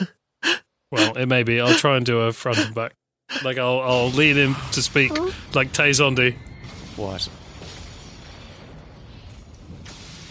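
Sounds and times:
speech: 0.9 - 7.4
movie explosion roar: 3.9 - 10.2
crackling debris from a movie explosion: 6.4 - 10.2.

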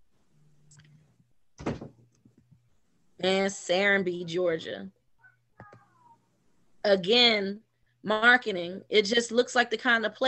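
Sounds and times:
door shutting with a thunk: 1.6 - 2.0
speech: 3.2 - 5.0, 6.8 - 10.2.

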